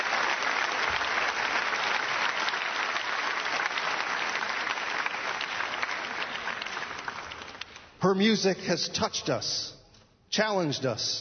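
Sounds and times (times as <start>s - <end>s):
audience applause: 0.0s - 7.9s
speech: 8.0s - 9.8s, 10.4s - 11.1s.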